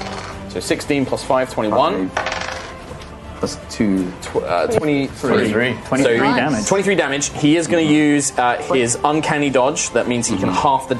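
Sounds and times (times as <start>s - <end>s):
speech: 0.5s - 2.3s, 3.4s - 10.9s
dice tumbling and rattling across a tabletop: 2.2s - 2.7s.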